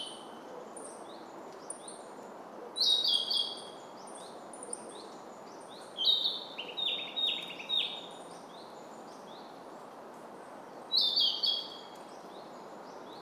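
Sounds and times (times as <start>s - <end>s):
Narcissus flycatcher whistled song: 2.8s - 3.6s, 6.0s - 8.1s, 10.9s - 11.8s.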